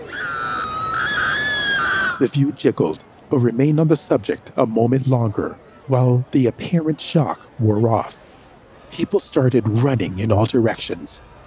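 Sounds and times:
high-pitched scream after an explosion: 0.0s - 2.3s
speech: 2.2s - 8.2s, 8.9s - 11.4s.

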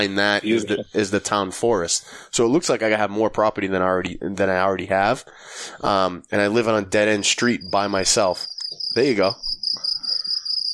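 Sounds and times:
speech: 0.0s - 9.4s
crickets chirping at night: 7.2s - 10.7s.

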